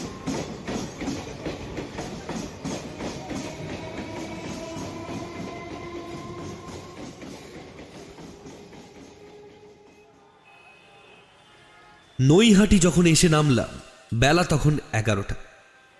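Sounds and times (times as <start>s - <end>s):
continuous clickety-clack of train on rails: 0.0s - 11.2s
train running on rails between stations: 0.0s - 15.9s
speech: 12.2s - 15.5s.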